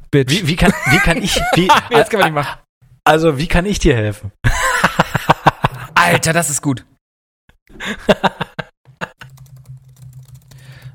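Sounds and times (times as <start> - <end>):
speech: 0.1 - 5.1, 6.1 - 6.9, 7.7 - 8.4
laughter: 0.3 - 2.2, 4.5 - 6.2, 7.8 - 9.3
typing on a computer keyboard: 9.2 - 10.9.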